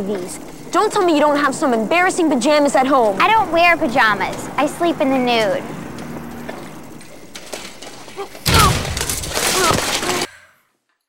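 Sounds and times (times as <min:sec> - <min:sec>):
speech: 0:00.0 - 0:05.8
bicycle crash with thuds and rattling metal: 0:07.0 - 0:11.0.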